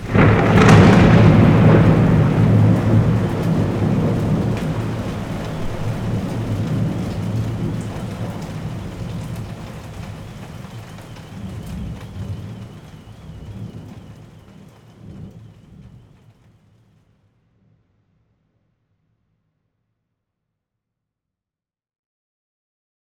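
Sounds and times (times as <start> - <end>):
thunder: 0.0 - 16.4
rain: 0.0 - 16.9.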